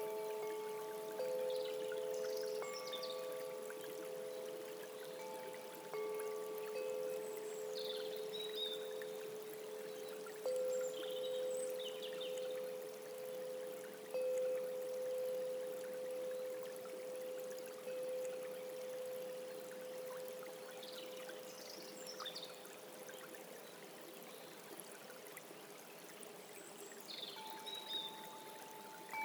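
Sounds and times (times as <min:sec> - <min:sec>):
Japanese Koshi chimes ringing: 0:00.0 - 0:21.5, 0:27.2 - 0:29.2
flowing river water: 0:00.0 - 0:29.2.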